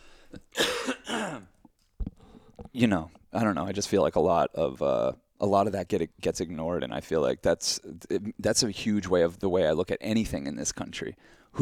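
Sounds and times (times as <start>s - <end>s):
man clearing his throat: 0.4s - 1.5s
speech: 2.8s - 11.5s.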